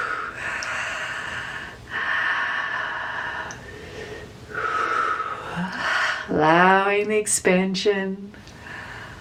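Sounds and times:
deep breaths during a guided breathing practice: 0:00.0 - 0:06.3, 0:08.5 - 0:09.1
speech: 0:06.4 - 0:08.4.

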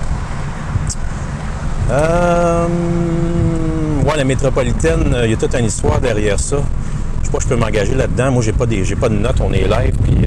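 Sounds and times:
loud wind on a windy day buffeting against the microphone: 0:00.0 - 0:10.2
speech: 0:01.9 - 0:03.2, 0:04.2 - 0:10.2.

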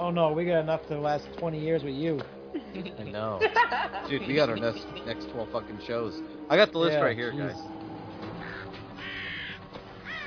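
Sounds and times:
speech: 0:00.1 - 0:07.8
laughter: 0:02.5 - 0:05.0
crow cawing: 0:08.3 - 0:10.2.

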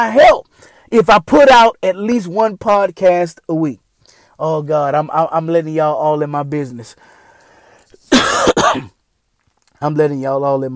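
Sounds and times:
speech: 0:00.0 - 0:03.8, 0:04.4 - 0:07.2, 0:08.1 - 0:09.0, 0:09.8 - 0:10.7
person coughing harshly: 0:08.1 - 0:09.0.

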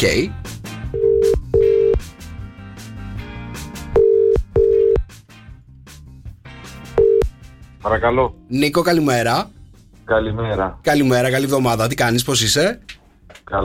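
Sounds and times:
speech: 0:00.0 - 0:01.1, 0:07.8 - 0:13.6
faint rhythmic music with sharp percussive hits: 0:00.0 - 0:12.2
telephone ringback tone in short double pulses: 0:01.0 - 0:02.0, 0:04.0 - 0:05.0, 0:07.0 - 0:07.3.

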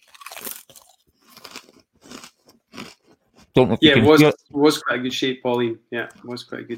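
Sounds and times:
someone biting and chewing a large crisp: 0:00.0 - 0:03.2
speech: 0:03.6 - 0:06.7.

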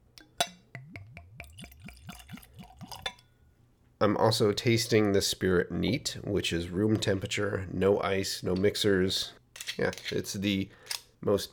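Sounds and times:
bright clink of a tulip-shaped whiskey nosing glass: 0:00.2 - 0:00.7, 0:02.8 - 0:03.3
whiskey glugging from a bottle into a tulip-shaped nosing glass: 0:00.4 - 0:03.3
speech: 0:04.0 - 0:11.5.

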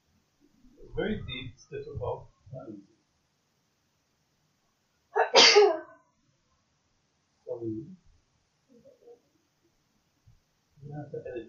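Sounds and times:
speech: 0:00.8 - 0:03.0, 0:10.9 - 0:11.4
single loud sneeze: 0:05.2 - 0:05.9.

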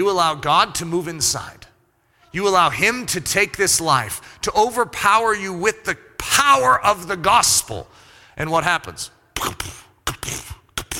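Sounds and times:
speech: 0:00.0 - 0:01.6, 0:02.3 - 0:10.4
voice imitating a heart beating with breathy scraping bursts: 0:09.4 - 0:10.9.

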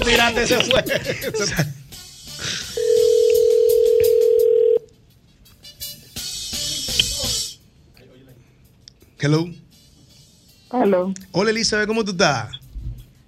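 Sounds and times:
speech: 0:00.0 - 0:01.8, 0:09.2 - 0:09.6, 0:10.7 - 0:12.6
laughter: 0:00.0 - 0:01.9
telephone call ring tone on a radio show: 0:02.8 - 0:04.9.

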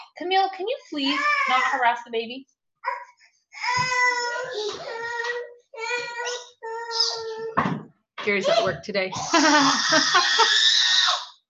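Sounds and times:
speech: 0:00.2 - 0:03.0, 0:08.2 - 0:10.7
child screaming: 0:01.1 - 0:01.8, 0:02.8 - 0:07.6, 0:09.6 - 0:11.3
laughter: 0:09.3 - 0:10.6.

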